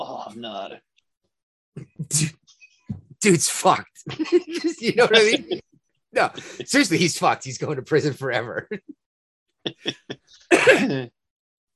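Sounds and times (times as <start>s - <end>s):
speech: 0.3s - 0.9s, 2.1s - 2.5s, 3.2s - 9.0s, 9.7s - 11.2s
laughter: 4.1s - 5.6s, 6.2s - 7.2s, 9.7s - 11.1s
person sneezing: 10.5s - 11.0s.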